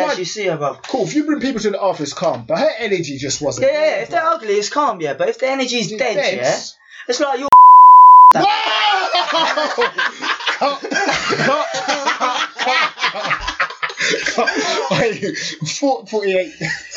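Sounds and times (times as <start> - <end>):
speech: 0.2 - 7.5, 8.4 - 16.9
short loud electronic beep tone: 7.5 - 8.4
laughter: 8.7 - 15.7, 16.5 - 16.9.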